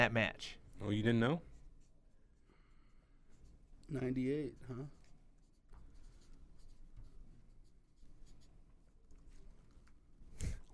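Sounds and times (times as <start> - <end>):
speech: 0.0 - 1.5, 3.9 - 5.0
pen scratching on paper writing an answer: 4.9 - 8.6.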